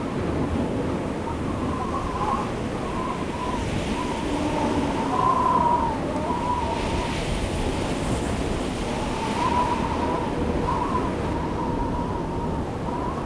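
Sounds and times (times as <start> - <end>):
arctic wind: 0.0 - 13.2.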